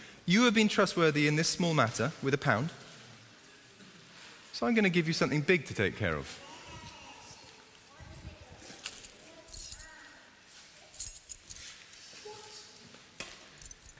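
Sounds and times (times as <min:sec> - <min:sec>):
speech: 0:00.3 - 0:02.8, 0:04.6 - 0:06.4
faint voice murmuring: 0:06.4 - 0:09.6
bunch of keys jangling while being handed over: 0:11.0 - 0:11.8, 0:13.4 - 0:13.9.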